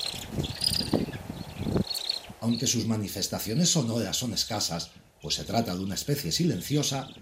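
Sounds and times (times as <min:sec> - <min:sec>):
Egyptian vulture soft rapid trilling call: 0:00.0 - 0:02.8
speech: 0:02.5 - 0:07.2.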